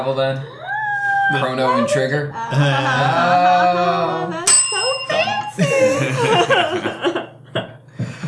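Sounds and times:
speech: 0.0 - 0.6, 1.3 - 4.5
people chuckling: 2.4 - 4.5, 5.5 - 8.2
bright bell ring: 4.5 - 5.6.

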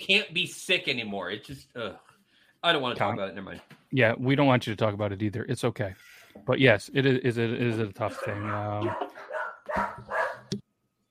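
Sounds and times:
speech: 0.0 - 10.6
dog barking: 8.1 - 10.5.

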